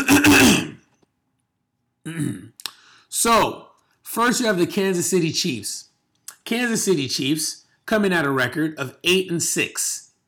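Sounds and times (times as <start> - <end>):
loud throat clearing: 0.0 - 0.8, 2.0 - 2.6
short voiced grunt: 0.0 - 0.8
speech: 2.1 - 3.6, 4.2 - 5.9, 6.5 - 10.0.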